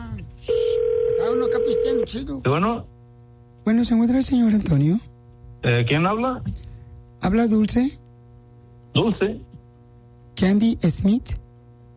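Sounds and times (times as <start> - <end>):
telephone tone as a call is placed: 0.4 - 2.1
speech: 2.0 - 3.0, 3.6 - 6.6, 7.2 - 8.0, 8.9 - 9.5, 10.4 - 11.4.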